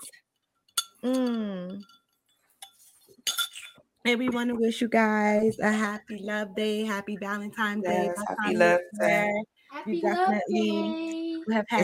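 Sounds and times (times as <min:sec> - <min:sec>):
glasses clinking in a toast: 0:00.7 - 0:03.8
speech: 0:01.0 - 0:01.9, 0:04.0 - 0:11.8.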